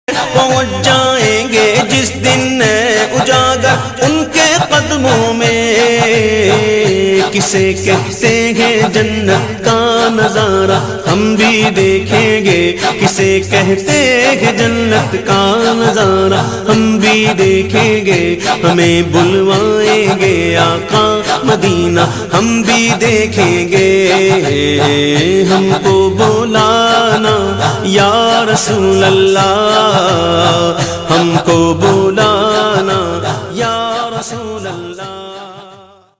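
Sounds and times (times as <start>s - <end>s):
naat ringtone: 0.1s - 36.1s.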